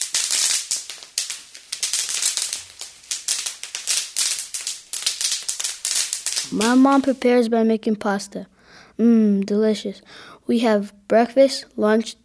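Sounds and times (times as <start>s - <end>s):
fireworks exploding in sharp crackling pops: 0.0s - 7.4s
speech: 6.5s - 12.2s.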